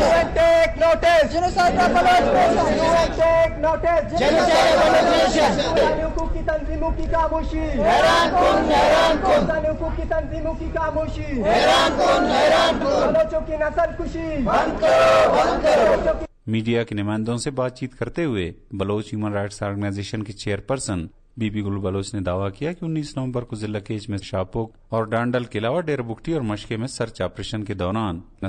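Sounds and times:
protesters chanting slogans at a human rights demonstration outside a press club: 0.0 - 0.4, 1.4 - 3.2, 4.2 - 6.0, 7.6 - 9.6, 11.4 - 13.3, 14.4 - 16.3
speech: 0.9 - 28.4.

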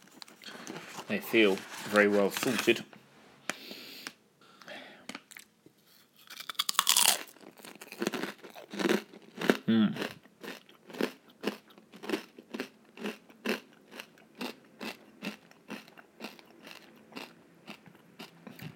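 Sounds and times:
speech: 1.1 - 3.0
person chewing crisp pork scratchings: 5.3 - 18.7.

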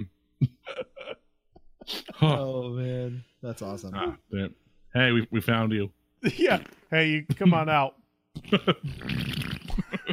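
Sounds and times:
speech: 2.2 - 9.9
fart: 8.4 - 9.9.

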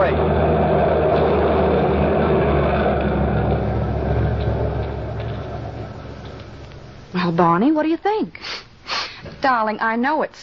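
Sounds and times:
truck engine rumbling with a low drone after unloading fish: 0.0 - 7.7
speech: 7.4 - 10.4.

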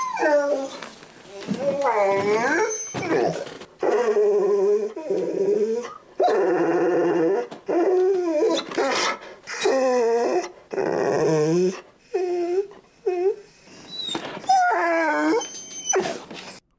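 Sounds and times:
dog wailing and howling in high-pitched cries: 0.0 - 16.2.

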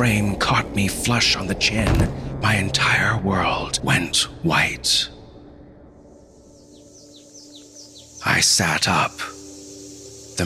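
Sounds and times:
speech: 0.0 - 5.2, 8.3 - 9.4
chorus of hidden cicadas under a hot midday sun: 6.0 - 10.4.

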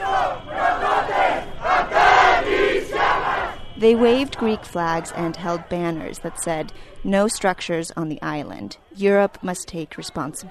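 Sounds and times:
large crowd of protesting residents chanting slogans in Mytilene on Lesbos, Greece: 0.0 - 6.8
speech: 3.8 - 10.4.

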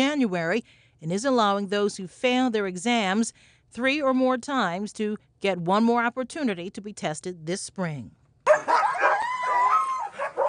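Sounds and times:
speech: 0.0 - 8.7
sled dogs barking and yipping at an Iditarod race fan event in Anchorage, Alaska: 8.5 - 10.4.

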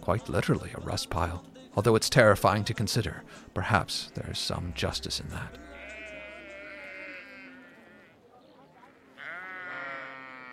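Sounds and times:
speech: 0.0 - 5.7
sheep bleating at a market: 3.9 - 8.2, 8.8 - 10.5.

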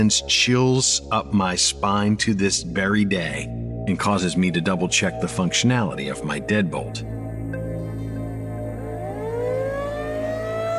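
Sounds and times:
speech: 0.0 - 7.2
tornado siren howling: 8.0 - 10.7.

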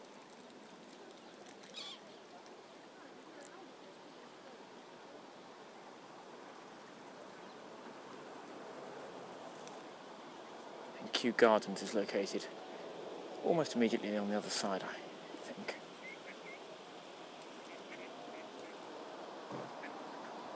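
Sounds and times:
boat drifting past on the River Thames: 0.0 - 20.5
faint bird calls: 1.2 - 2.3, 15.7 - 16.7, 17.5 - 18.9, 19.5 - 20.5
speech: 11.2 - 12.7, 13.4 - 15.7.

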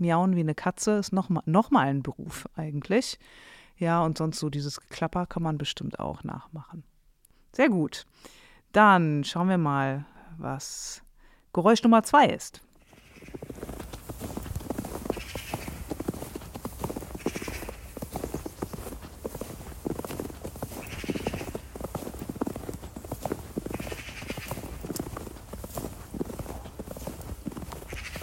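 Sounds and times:
speech: 0.0 - 6.9, 7.6 - 11.0, 11.6 - 12.6
footsteps crunching through snow: 12.8 - 28.2.

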